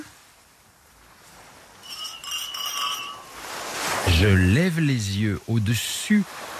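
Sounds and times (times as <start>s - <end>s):
hissy background: 0.0s - 6.5s
glasses clinking in a toast: 1.8s - 4.1s
speech: 4.1s - 6.5s.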